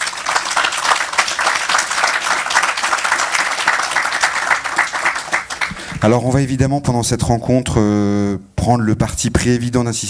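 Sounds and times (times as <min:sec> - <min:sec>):
crowd applauding to welcome a guest author: 0:00.0 - 0:06.1
speech: 0:06.0 - 0:10.0.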